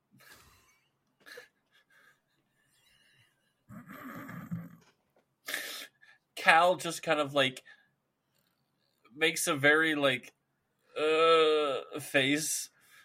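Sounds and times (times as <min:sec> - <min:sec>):
speech: 0:06.4 - 0:07.8, 0:09.2 - 0:10.4, 0:11.0 - 0:12.8
person imitating a goat's bleat: 0:11.0 - 0:12.0.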